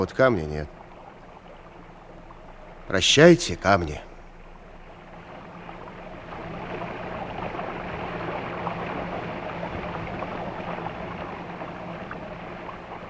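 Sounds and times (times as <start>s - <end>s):
speech: 0.0s - 0.8s, 2.9s - 4.1s
ship engine drone on open sea: 0.0s - 13.0s
small waves washing against a ship hull: 0.0s - 13.0s.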